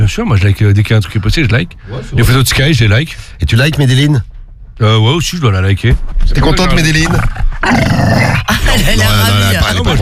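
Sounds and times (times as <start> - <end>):
speech: 0.1 - 10.0
annoyed female dog growling: 7.0 - 8.5.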